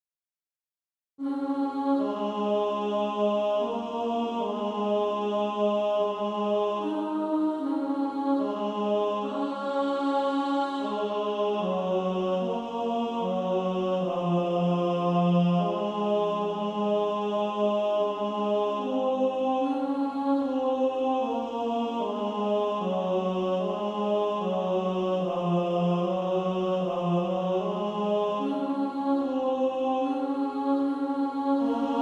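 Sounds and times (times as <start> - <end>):
female choir alto section singing: 1.2 - 32.0.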